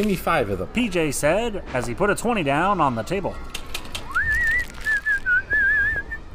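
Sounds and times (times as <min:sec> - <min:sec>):
speech: 0:00.0 - 0:03.6
faint low noise: 0:00.0 - 0:06.3
person whistling a melodic tune: 0:04.1 - 0:06.3.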